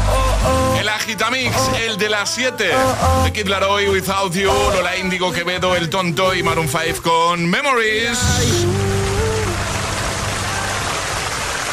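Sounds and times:
speech: 0:01.1 - 0:09.0
dense rain falling: 0:08.2 - 0:11.7.

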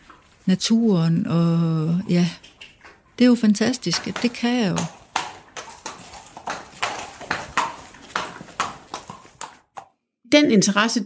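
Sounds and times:
speech: 0:00.5 - 0:02.5, 0:03.2 - 0:05.0, 0:10.4 - 0:11.0
Icelandic horse hooves clip-clopping on hard ground: 0:03.6 - 0:10.0.

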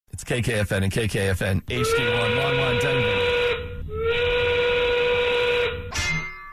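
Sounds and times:
speech: 0:00.2 - 0:03.4
factory steam whistle blowing a steady harmonic tone: 0:01.7 - 0:05.9.

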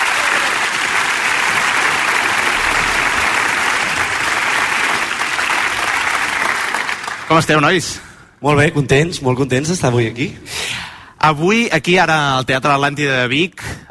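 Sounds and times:
large audience applauding in a theatre: 0:00.0 - 0:07.8
speech: 0:07.3 - 0:13.8.

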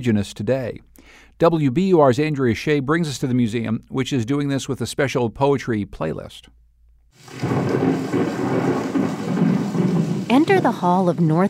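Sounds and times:
speech: 0:00.0 - 0:06.6, 0:07.2 - 0:08.8, 0:10.3 - 0:11.4
recorded rain from the Great Plains: 0:07.2 - 0:11.4
recorded rolling thunder from the Great Plains: 0:07.2 - 0:11.4.

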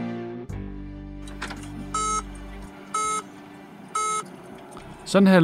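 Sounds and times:
mechanical clunks as the car starts up: 0:01.3 - 0:03.2
Citroën C5 X warning tone beeping at startup: 0:01.9 - 0:02.3, 0:02.9 - 0:03.3, 0:03.9 - 0:04.3
speech: 0:05.1 - 0:05.4.

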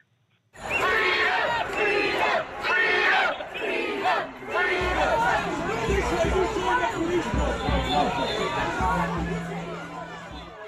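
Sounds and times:
large crowd of protesters shouting and chanting in the streets of central London: 0:00.6 - 0:10.6
low rumbling: 0:08.8 - 0:10.6.

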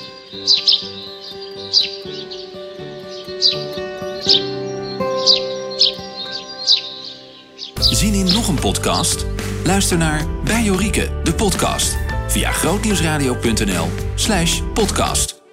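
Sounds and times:
Eurasian tree sparrow chilp-chilp call played from a device: 0:00.0 - 0:10.0
speech: 0:00.3 - 0:01.1, 0:08.0 - 0:15.4.

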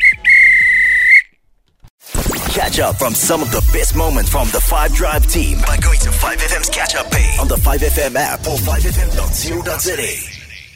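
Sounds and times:
referee's whistle signalling end of match: 0:00.0 - 0:01.3
speech: 0:02.6 - 0:10.3.

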